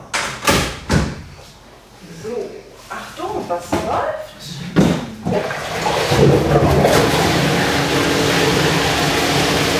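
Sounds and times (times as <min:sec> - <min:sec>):
door being shut: 0:00.4 - 0:01.2
speech: 0:03.5 - 0:05.6
water pumped into underwater treadmill tank: 0:05.3 - 0:09.7.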